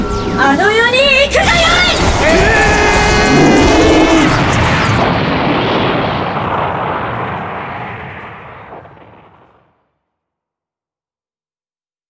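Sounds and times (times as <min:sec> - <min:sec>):
bright tonal charge-up of special attack sound effect: 0:00.0 - 0:06.5
massive roaring blast of special attack sound effect: 0:01.3 - 0:09.8.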